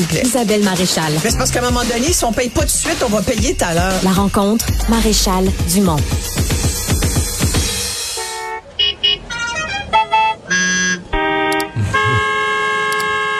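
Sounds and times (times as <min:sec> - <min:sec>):
speech: 0:00.0 - 0:06.6
busy street-like background: 0:00.0 - 0:13.3
different car horns honking: 0:08.0 - 0:13.3.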